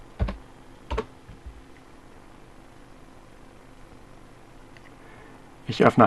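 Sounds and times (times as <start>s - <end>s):
keyboard typing as a username and password are entered: 0.2s - 1.6s
speech: 5.7s - 6.0s.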